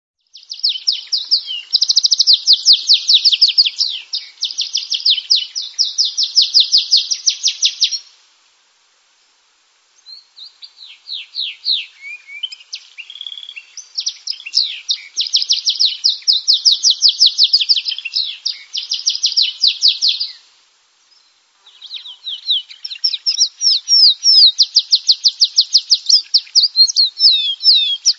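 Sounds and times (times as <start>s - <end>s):
wild canary singing: 0.3s - 8.1s, 10.0s - 20.4s, 21.1s - 28.1s.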